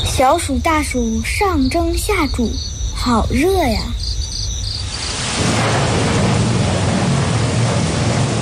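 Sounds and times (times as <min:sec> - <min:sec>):
speech: 0:00.2 - 0:04.0
deep rolling thunder: 0:03.9 - 0:08.3
steady rain: 0:04.8 - 0:08.3.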